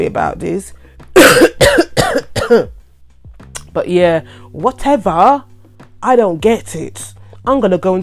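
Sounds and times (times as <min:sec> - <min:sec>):
speech: 0:00.0 - 0:01.9, 0:02.5 - 0:02.8, 0:03.7 - 0:08.0
dry cough: 0:01.2 - 0:02.8.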